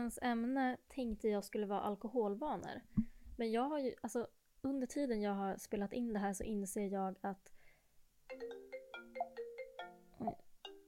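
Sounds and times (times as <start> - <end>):
speech: 0.0 - 7.6, 8.3 - 8.7, 10.2 - 10.4
phone ringing with a melodic electronic ringtone: 8.3 - 10.8.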